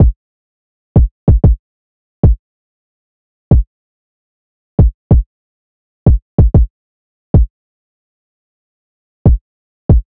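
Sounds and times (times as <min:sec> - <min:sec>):
hip hop drum loop with kick at 94 BPM: 0:01.0 - 0:01.6, 0:04.8 - 0:05.2, 0:06.1 - 0:06.7, 0:09.3 - 0:10.1.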